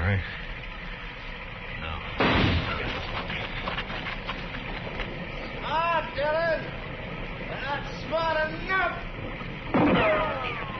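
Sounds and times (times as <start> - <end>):
men speaking: 0.0 - 0.6, 1.7 - 4.3, 4.9 - 9.3
gunshot fired at a tree: 2.2 - 3.0, 9.7 - 10.4.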